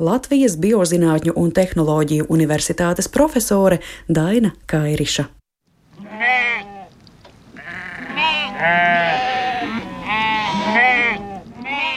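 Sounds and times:
speech: 0.0s - 5.4s, 8.6s - 9.2s
small flock of sheep bleating: 6.0s - 7.0s, 7.6s - 11.9s.

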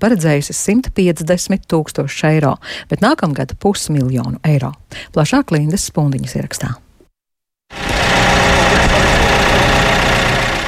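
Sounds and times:
speech: 0.0s - 6.8s
snow clearing machine engine idling on a square in Riga: 7.7s - 10.6s.

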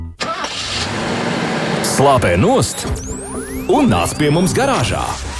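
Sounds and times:
car engine starter cranking with a steady whir: 0.2s - 3.2s
car engine running with a loud rough rumble: 0.5s - 3.7s
speech: 2.0s - 5.3s.

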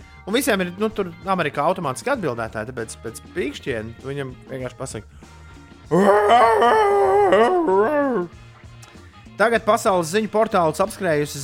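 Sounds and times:
speech: 0.2s - 8.4s, 9.4s - 11.4s
person imitating a roaring movie creature: 5.9s - 8.3s.

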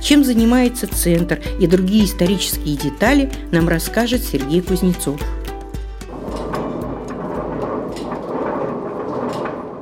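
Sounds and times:
speech: 0.1s - 5.4s
millstones of an old mill grinding in a historic village building: 5.8s - 9.8s.

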